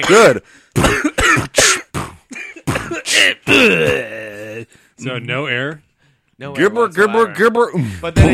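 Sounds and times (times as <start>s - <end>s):
speech: 0.0s - 1.6s, 3.0s - 8.3s
rough coughing: 0.0s - 4.6s
throat clearing: 0.8s - 4.4s.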